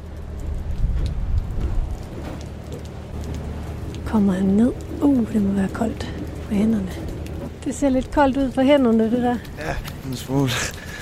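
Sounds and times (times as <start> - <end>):
low rumbling background: 0.0 - 11.0
steady rain falling: 0.0 - 11.0
speech: 4.1 - 10.8.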